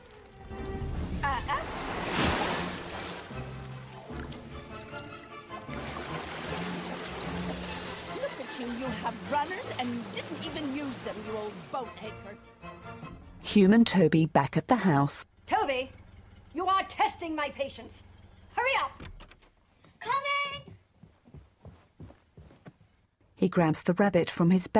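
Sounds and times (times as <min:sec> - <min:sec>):
water swishing and splashing on a pond: 0:00.0 - 0:12.4
speech: 0:08.9 - 0:12.6, 0:13.5 - 0:16.0, 0:17.2 - 0:19.1, 0:23.4 - 0:24.7.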